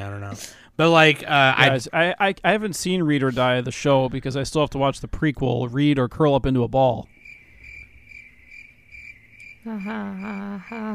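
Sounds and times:
speech: 0.3 - 7.1, 9.6 - 10.9
crickets chirping in a rhythmic trill: 7.0 - 10.9.

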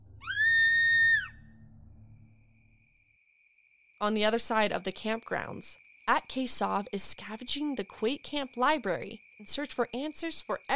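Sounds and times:
high-pitched scream: 0.0 - 1.7
speech: 4.0 - 10.7.

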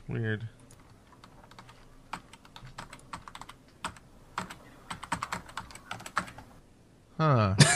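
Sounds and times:
speech: 0.1 - 0.6, 7.2 - 7.7
computer keyboard typing: 0.7 - 6.5.

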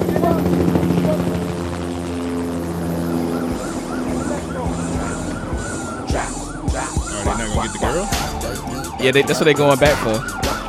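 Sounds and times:
helicopter rotor droning overhead: 0.0 - 10.6
faint siren-like tones: 2.7 - 10.6
murmuring voices: 3.4 - 10.3
speech: 9.0 - 10.4.

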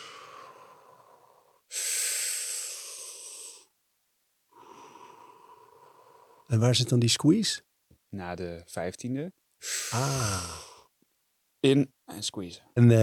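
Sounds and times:
deep breathing during a breathing exercise: 0.0 - 3.7, 4.5 - 6.5, 9.6 - 10.9
speech: 6.5 - 10.7, 11.6 - 13.0.

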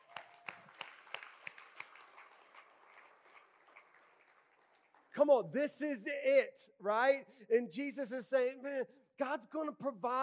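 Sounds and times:
audience clapping in a room: 0.0 - 5.4
speech: 5.2 - 10.2.

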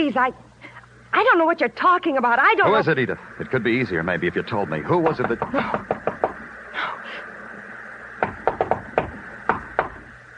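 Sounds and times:
speech: 0.0 - 0.5, 1.1 - 6.1
knocking on a door: 5.0 - 6.4, 8.2 - 10.1.

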